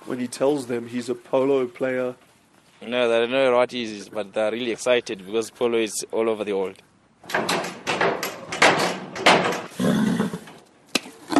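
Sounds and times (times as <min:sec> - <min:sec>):
speech: 0:00.1 - 0:07.5
horse kicking a wooden stable door: 0:07.2 - 0:09.8.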